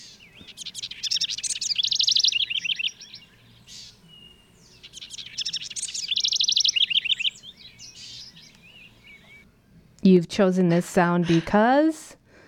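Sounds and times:
house wren singing short bubbling trilled phrases: 0.0s - 9.4s
speech: 10.1s - 12.0s.

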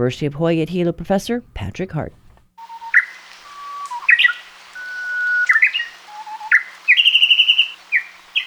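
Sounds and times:
speech: 0.0s - 2.2s
Japanese bush warbler singing: 2.6s - 8.4s.

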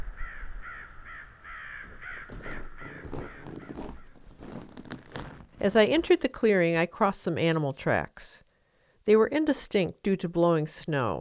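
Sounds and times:
flock of crows cawing: 0.0s - 4.2s
speech: 5.6s - 8.4s, 9.0s - 11.2s.

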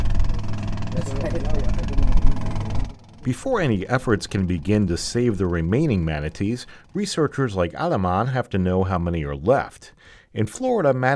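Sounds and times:
John boat inboard motor puttering along: 0.0s - 7.7s
speech: 3.2s - 11.1s.

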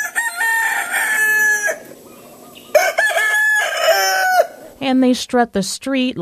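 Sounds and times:
feral rooster crowing cock-a-doodle-doo: 0.0s - 1.9s, 2.6s - 4.8s
speech: 4.9s - 6.1s.

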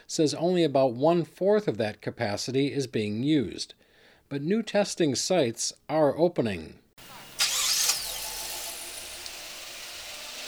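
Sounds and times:
speech: 0.1s - 7.1s
car engine starting and idling at a drive-through testing site: 7.0s - 10.4s.

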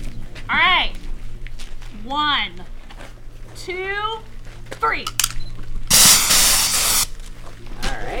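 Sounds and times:
speech: 2.1s - 2.3s, 3.6s - 5.2s
aerosol hiss from a can of bear spray: 5.9s - 7.2s.

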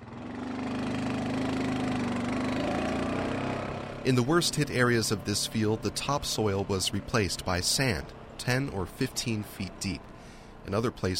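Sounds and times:
four-wheeler ATV engine running on a farm beside a field and grain bins: 0.0s - 11.1s
speech: 4.0s - 11.1s.

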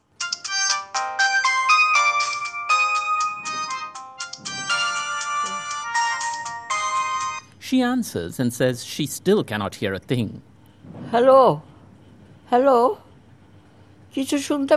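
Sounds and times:
melodic electronic ringtone on an outgoing phone call: 0.3s - 7.4s
speech: 7.7s - 10.5s, 11.1s - 11.7s, 12.5s - 13.0s, 14.1s - 14.7s.

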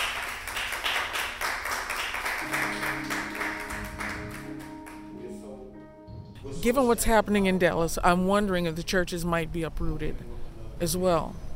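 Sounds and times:
church audience clapping hands: 0.0s - 5.3s
sustained organ or keyboard tones: 2.4s - 7.5s
speech: 6.6s - 11.5s.

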